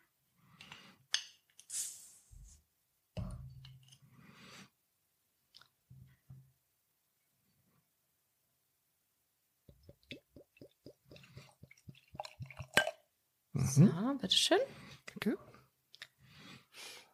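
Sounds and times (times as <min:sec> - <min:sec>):
stout beer bottle opening hiss: 0:01.6 - 0:02.5
speech: 0:13.8 - 0:15.5.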